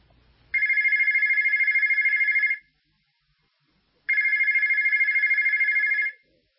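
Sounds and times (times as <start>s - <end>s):
telephone ringing with electronic trill: 0.6s - 2.7s, 4.1s - 6.2s.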